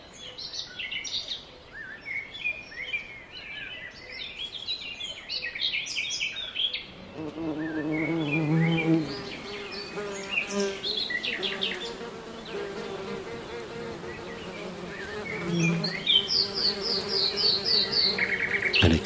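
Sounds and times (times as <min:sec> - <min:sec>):
birds chirping and twittering: 0:00.2 - 0:19.0
bees buzzing: 0:07.0 - 0:19.0.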